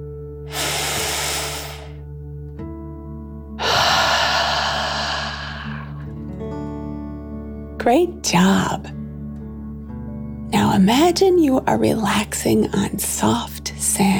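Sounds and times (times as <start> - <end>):
soft steady music: 0.0 - 14.1
deep breath in: 0.5 - 2.0, 3.6 - 6.2
forceful exhale through the mouth: 0.5 - 2.0, 3.6 - 6.1
speech: 7.8 - 9.0, 10.7 - 14.1.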